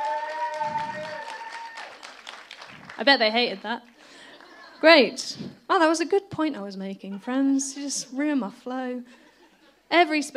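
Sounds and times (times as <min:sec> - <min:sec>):
light audience applause at a talk: 0:00.0 - 0:03.3
speech: 0:03.0 - 0:03.9, 0:04.8 - 0:09.2, 0:09.9 - 0:10.3.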